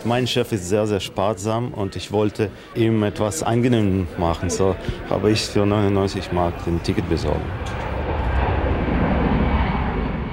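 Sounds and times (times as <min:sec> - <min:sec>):
speech: 0:00.0 - 0:07.9
Boeing airliner taking off: 0:04.0 - 0:10.3.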